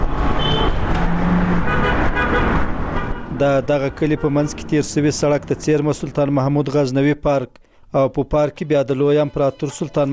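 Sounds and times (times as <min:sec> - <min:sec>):
cars passing on a highway beside a village: 0:00.0 - 0:06.8
car horn toot: 0:00.4 - 0:00.8, 0:01.6 - 0:03.3
speech: 0:03.4 - 0:10.1.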